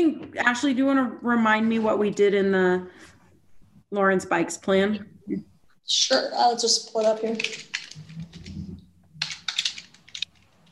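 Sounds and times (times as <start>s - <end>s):
speech: 0.0s - 3.1s, 3.9s - 7.8s
typing on a computer keyboard: 6.9s - 8.6s, 9.2s - 10.6s.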